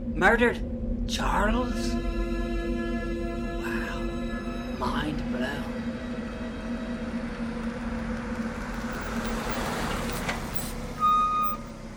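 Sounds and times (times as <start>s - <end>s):
car engine rumbling as a car pulls up in the driveway: 0.0s - 11.9s
speech: 0.2s - 2.2s, 4.8s - 5.8s
electronic beep: 10.1s - 11.6s.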